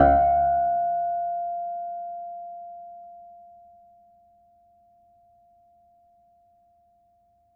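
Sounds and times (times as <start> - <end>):
mid-range piano harmonics: 0.0 - 2.6.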